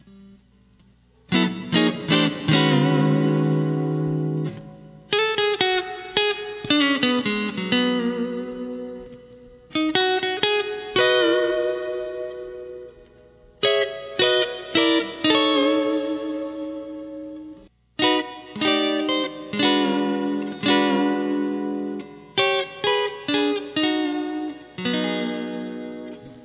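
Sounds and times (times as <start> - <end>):
lead guitar on Telecaster with Bigsby: 0.0 - 26.4.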